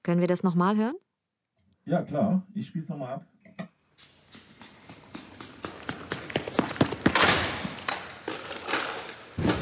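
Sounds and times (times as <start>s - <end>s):
speech: 0.0s - 1.1s, 1.8s - 3.7s
athlete's rhythmic running footfalls in a high jump run-up: 4.0s - 8.6s.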